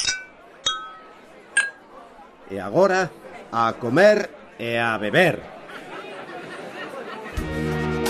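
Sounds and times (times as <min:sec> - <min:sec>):
wine glasses clinking in a toast: 0:00.0 - 0:01.9
speech: 0:02.5 - 0:05.6
laughter: 0:05.3 - 0:08.0.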